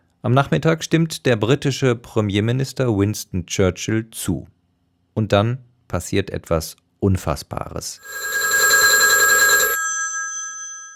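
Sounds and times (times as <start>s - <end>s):
speech: 0.2s - 4.6s, 5.2s - 8.4s
telephone bell ringing with bright metallic peal: 8.0s - 10.9s.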